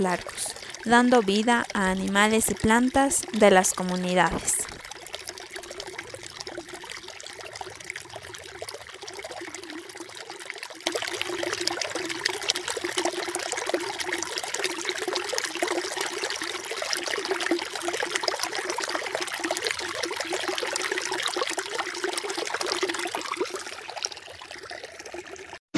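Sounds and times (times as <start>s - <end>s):
speech: 0.0s - 4.7s
bright hissing running water: 0.0s - 6.2s
water flowing and trickling along a stream: 0.0s - 25.6s.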